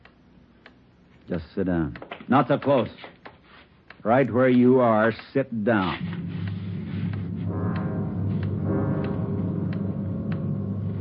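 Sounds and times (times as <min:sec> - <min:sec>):
clock ticking: 0:00.0 - 0:10.9
speech: 0:01.3 - 0:03.2, 0:04.0 - 0:06.2
heavy continuous low rumble: 0:06.0 - 0:10.9.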